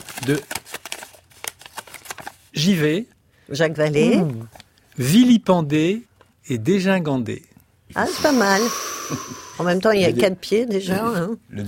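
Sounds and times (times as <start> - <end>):
paper slips bearing words drawn and unfolded in a word game: 0.0 - 2.5
speech: 0.2 - 0.6, 2.6 - 11.6.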